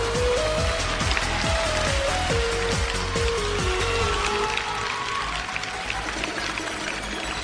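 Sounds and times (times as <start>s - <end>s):
soft rhythmic beat: 0.0s - 4.5s
crowd applauding: 0.0s - 7.4s.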